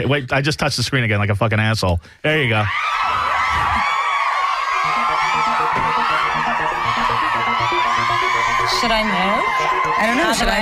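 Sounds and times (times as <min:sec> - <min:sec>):
speech: 0:00.0 - 0:03.2, 0:08.7 - 0:10.6
loud dense crowd cheering and whooping: 0:02.7 - 0:10.6.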